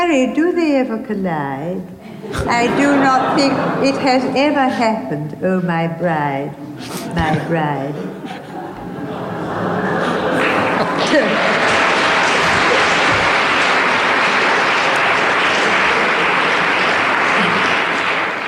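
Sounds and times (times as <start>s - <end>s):
speech: 0.1s - 8.2s
laughter: 2.0s - 5.2s, 6.6s - 18.4s
crowd applauding: 8.8s - 18.4s.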